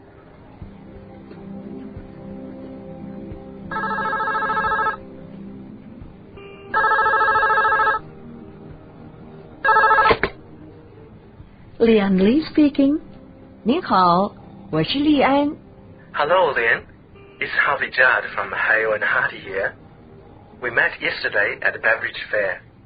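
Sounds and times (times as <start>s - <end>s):
hotel telephone ringing with a buzzy electronic trill: 3.7s - 5.3s, 6.4s - 8.3s, 9.6s - 10.3s
speech: 11.8s - 15.6s, 16.2s - 19.8s, 20.6s - 22.7s.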